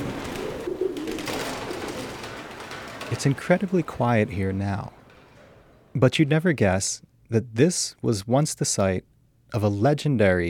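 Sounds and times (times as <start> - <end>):
pigeons cooing in the rafters of a farm storage building: 0.0 - 3.2
pigeons flapping wings: 0.0 - 5.7
steady hollow noise in a farm storage building: 0.0 - 10.4
speech: 3.1 - 5.0, 6.0 - 10.4.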